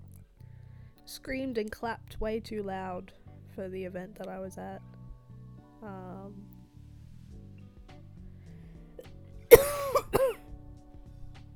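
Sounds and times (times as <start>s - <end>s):
speech: 1.1s - 5.0s, 5.8s - 6.5s
person with a sore throat clearing their throat: 9.5s - 10.4s
person with a sore throat coughing: 9.5s - 10.4s.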